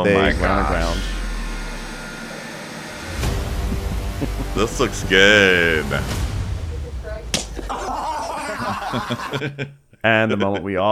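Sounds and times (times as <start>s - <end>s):
speech: 0.0s - 1.2s, 4.6s - 6.2s, 8.9s - 10.9s
laughter: 3.3s - 9.7s
slap to the head: 7.3s - 7.6s.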